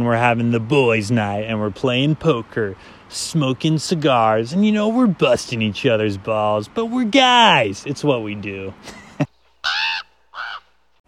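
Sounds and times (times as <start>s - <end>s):
speech: 0.0s - 9.0s
bird cawing outdoors: 9.5s - 10.8s.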